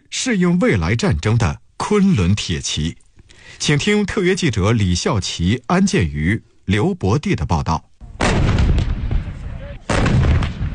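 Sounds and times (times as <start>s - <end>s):
speech: 0.2s - 8.5s
heavy artillery fire during military exercise: 8.0s - 10.7s.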